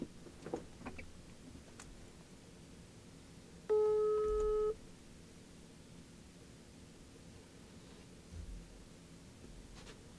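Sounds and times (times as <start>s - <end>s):
outgoing phone call ringing tone: 3.7s - 4.8s.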